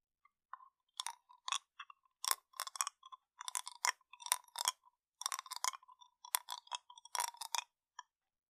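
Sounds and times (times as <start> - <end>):
chewing a sweet melting candy with crisp wet clicks and soft crunches: 0.5 - 8.1.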